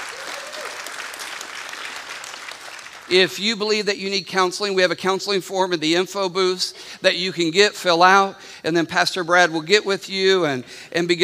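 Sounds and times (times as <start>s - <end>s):
church audience applauding: 0.0s - 3.1s
speech: 3.1s - 11.2s.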